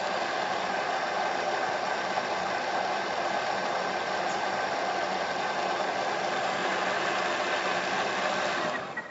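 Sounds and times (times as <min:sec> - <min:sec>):
blender pureeing tomato soup at high speed: 0:00.0 - 0:09.0.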